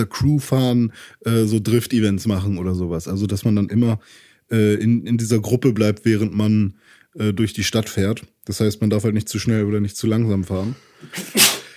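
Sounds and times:
speech: 0:00.0 - 0:11.6
person sneezing: 0:11.0 - 0:11.7.

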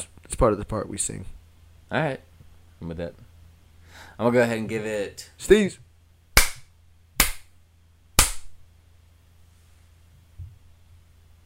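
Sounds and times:
speech: 0:00.0 - 0:03.3, 0:04.0 - 0:05.8
steady low electrical hum: 0:00.0 - 0:11.4
hand slaps: 0:06.4 - 0:07.5, 0:08.2 - 0:08.6.

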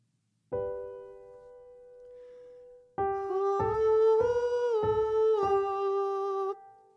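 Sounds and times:
piano chord: 0:00.5 - 0:06.9
person singing head-voice oo vowel warm-up exercise: 0:03.1 - 0:06.8.

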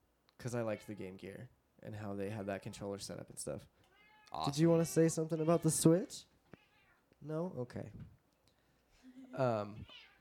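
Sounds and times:
speech: 0:00.4 - 0:06.3, 0:07.2 - 0:08.2, 0:09.3 - 0:10.1
cat meowing: 0:03.9 - 0:07.1, 0:09.8 - 0:10.1.

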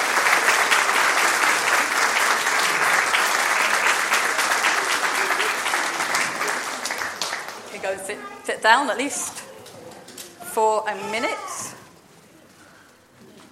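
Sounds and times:
room full of people applauding after a blessing: 0:00.0 - 0:07.9
speech: 0:08.1 - 0:09.4, 0:10.6 - 0:11.7.

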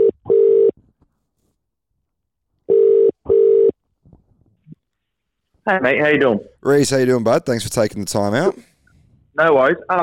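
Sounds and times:
phone ringback tone: 0:00.0 - 0:00.7, 0:02.7 - 0:03.7
speech: 0:05.7 - 0:08.7, 0:09.4 - 0:10.0.

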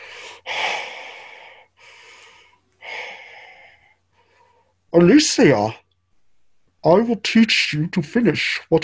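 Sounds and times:
heavy raspy breathing over a comm call: 0:00.0 - 0:04.8
faint steady hum: 0:00.0 - 0:08.8
speech: 0:04.9 - 0:05.8, 0:06.8 - 0:08.8.

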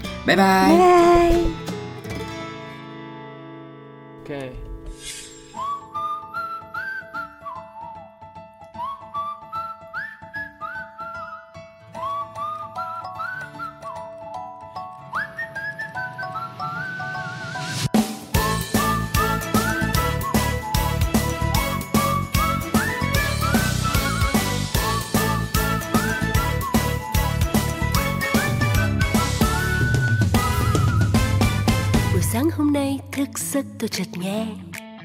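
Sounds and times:
full band playing a Vietnamese song: 0:00.0 - 0:01.8, 0:18.4 - 0:32.4
speech: 0:00.2 - 0:01.7, 0:04.3 - 0:05.2, 0:33.9 - 0:34.7
bright whistled melody in a Vietnamese song: 0:05.1 - 0:32.2.

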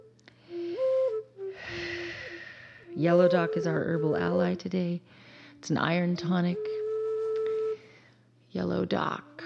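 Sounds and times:
slow deep breath with wheezy whistling inhale and airy exhale: 0:00.3 - 0:03.0, 0:05.1 - 0:05.6
speech: 0:03.0 - 0:06.9, 0:08.5 - 0:09.3.

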